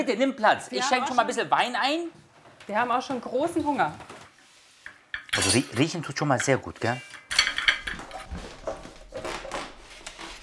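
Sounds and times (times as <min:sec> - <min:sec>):
speech: 0:00.0 - 0:04.1, 0:05.4 - 0:07.2
plates and cutlery clinking as food is served at a dinner table: 0:04.8 - 0:09.1.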